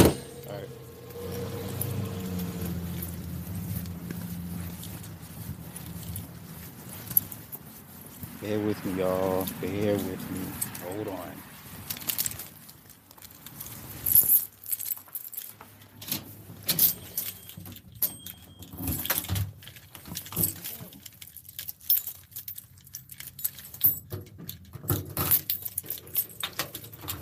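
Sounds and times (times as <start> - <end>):
low rumble: 0.0 - 6.4
car keys jangling: 0.0 - 27.2
speech: 8.5 - 11.5.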